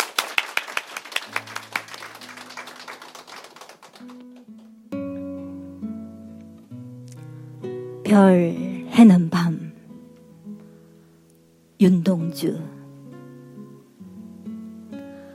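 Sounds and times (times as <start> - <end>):
crowd applauding: 0.0 - 4.8
soft sustained instrumental music: 4.0 - 15.3
speech: 8.1 - 9.5, 11.8 - 12.8.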